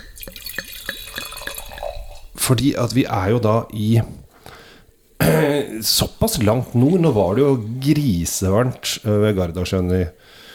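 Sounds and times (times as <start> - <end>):
wine from a freshly uncorked bottle glugging into a glass: 0.0 - 2.4
speech: 2.5 - 4.2, 5.8 - 10.4.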